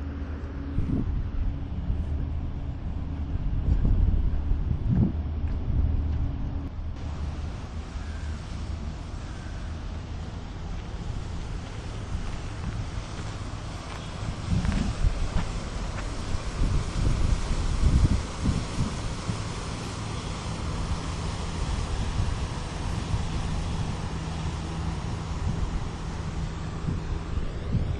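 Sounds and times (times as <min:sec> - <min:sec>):
gusting wind outdoors: 0:00.0 - 0:27.9
small boat engine droning on a river: 0:00.0 - 0:27.9.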